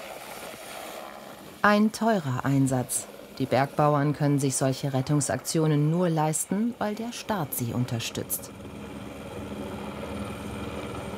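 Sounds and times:
speech: 1.6 - 8.6
rescue helicopter engine and rotor landing in the mountains: 2.3 - 11.1.

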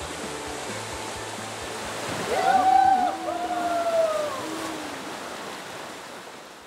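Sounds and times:
river water rushing: 0.0 - 6.6
sustained wavering voice-like tone: 2.3 - 5.2.

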